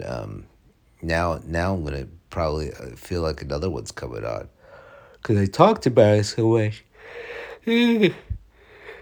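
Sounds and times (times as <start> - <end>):
speech: 0.0 - 4.6, 5.2 - 8.3
breathy human yawn with voiced groan: 7.6 - 8.4.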